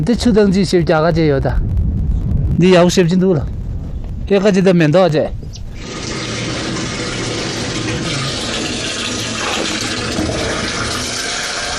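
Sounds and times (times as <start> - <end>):
speech: 0.0 - 1.7, 2.6 - 3.6, 4.3 - 6.0
water running from a turned-on tap in a new village home: 5.8 - 11.7.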